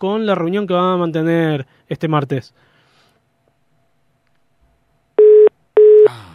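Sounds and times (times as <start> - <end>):
speech: 0.0 - 2.7
telephone line tone beeping after a call is cut off: 5.2 - 6.3.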